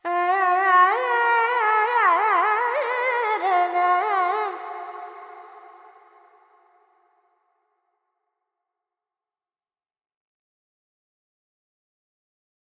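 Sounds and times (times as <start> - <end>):
female Carnatic vocal alap in Dorian mode: 0.0 - 5.9.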